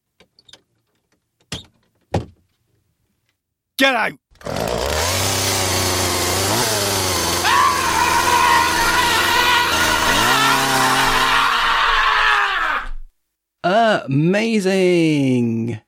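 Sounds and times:
speech: 0:03.8 - 0:04.7, 0:14.0 - 0:15.8
chainsaw revving: 0:04.3 - 0:12.3
high screaming cries: 0:07.3 - 0:13.1.

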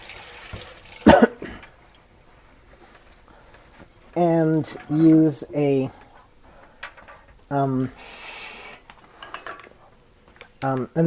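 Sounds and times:
tap water running while washing up: 0:00.0 - 0:01.7
speech: 0:04.2 - 0:06.0, 0:07.5 - 0:08.1, 0:10.6 - 0:11.0.

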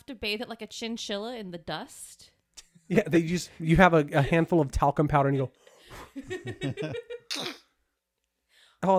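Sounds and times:
speech: 0:00.1 - 0:02.3, 0:02.9 - 0:07.6
voice imitating a cute little creature's sneeze: 0:07.3 - 0:07.7.

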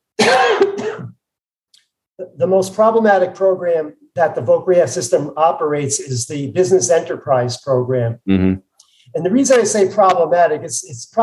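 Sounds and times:
harsh raspy cough: 0:00.2 - 0:01.2
speech: 0:02.2 - 0:11.2.

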